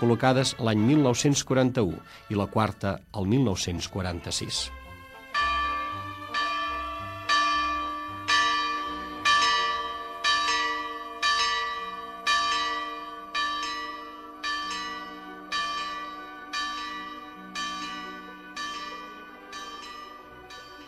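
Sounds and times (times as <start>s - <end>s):
speech: 0.0s - 4.8s
large church bell in Girona striking the hours: 5.4s - 20.8s.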